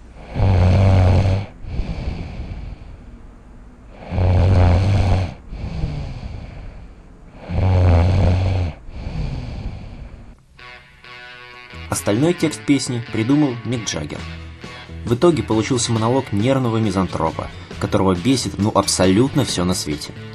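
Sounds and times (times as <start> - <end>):
breathy exhale: 0.0 - 3.3, 3.9 - 10.4
loud rasping snoring: 0.1 - 2.9, 3.9 - 10.4
speech: 12.0 - 14.4, 15.0 - 20.3.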